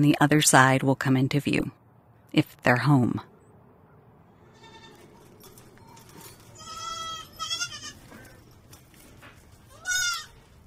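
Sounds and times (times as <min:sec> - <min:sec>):
speech: 0:00.0 - 0:03.3
soft farmyard noise: 0:00.0 - 0:10.6
working goats behind a chain link fence at a city nursery lot bleating: 0:04.5 - 0:05.1, 0:06.5 - 0:08.4, 0:09.7 - 0:10.5.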